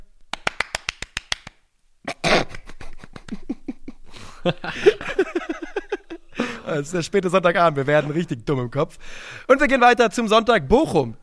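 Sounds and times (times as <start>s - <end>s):
hands clapping: 0.3s - 1.6s
laughter: 2.6s - 6.9s
speech: 4.4s - 5.4s, 6.7s - 11.2s.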